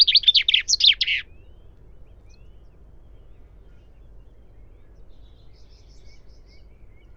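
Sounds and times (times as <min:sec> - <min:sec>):
common chaffinch Fringilla coelebs singing: 0:00.0 - 0:01.3.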